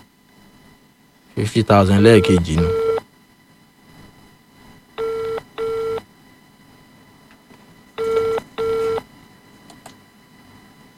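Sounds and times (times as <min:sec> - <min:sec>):
speech: 0:01.4 - 0:02.8
telephone ringback tone on a radio station call-in line: 0:05.0 - 0:06.0, 0:08.0 - 0:09.0.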